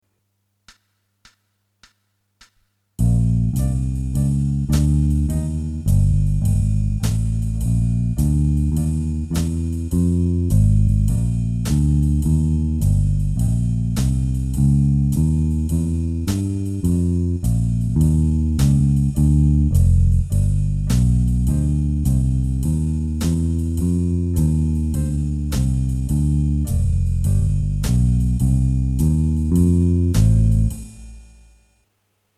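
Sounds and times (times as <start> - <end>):
walking bass line: 3.0 - 31.1.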